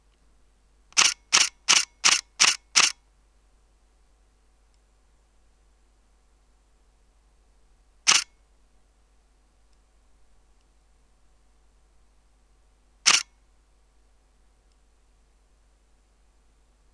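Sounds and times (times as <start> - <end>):
Sigma SD14 camera shutter in continuous shooting: 1.0 - 3.0, 8.1 - 8.4, 13.1 - 13.4.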